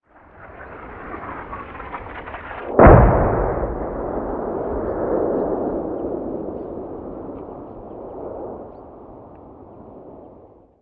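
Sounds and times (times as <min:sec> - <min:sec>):
medium artillery fire: 0:00.8 - 0:08.7.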